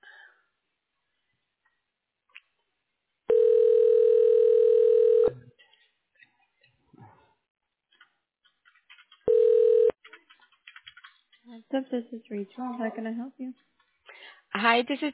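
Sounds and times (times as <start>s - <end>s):
steady telephone tone during call transfer to radiology office: 3.3s - 5.4s, 9.3s - 9.9s
speech: 11.7s - 13.8s, 14.6s - 15.1s.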